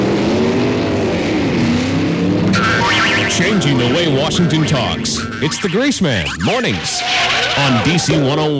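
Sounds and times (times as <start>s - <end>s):
car engine revving and accelerating away: 0.0s - 8.5s
speech: 3.4s - 8.5s
brief high screech: 6.2s - 8.1s.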